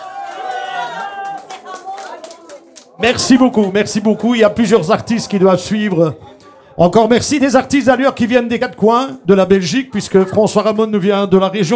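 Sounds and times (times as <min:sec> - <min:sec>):
audience applause: 0:00.0 - 0:05.2
speech: 0:03.0 - 0:11.7.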